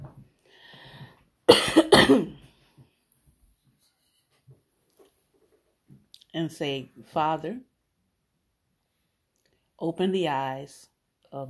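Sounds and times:
person coughing: 1.5 - 2.4
speech: 2.1 - 2.4, 6.3 - 7.7, 9.8 - 11.4.

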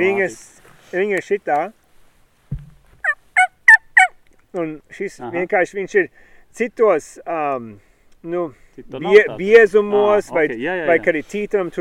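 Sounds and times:
speech: 0.0 - 1.8, 4.5 - 11.7
low thump: 2.5 - 3.0
yelping calls imitating a turkey hen: 3.0 - 4.2.

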